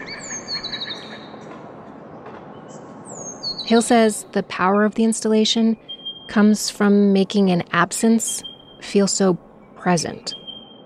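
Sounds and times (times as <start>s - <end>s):
recorded songs of formerly native bird species from speakers: 0.0s - 10.8s
speech: 3.7s - 10.4s
thin whistled notes: 10.3s - 10.8s.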